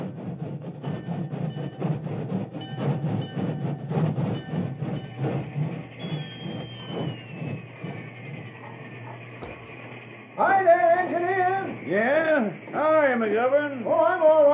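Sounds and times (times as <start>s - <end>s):
train arriving on main track: 0.0s - 14.5s
train wheels clacking over rail joints: 0.6s - 14.5s
thin high squeal: 4.4s - 14.5s.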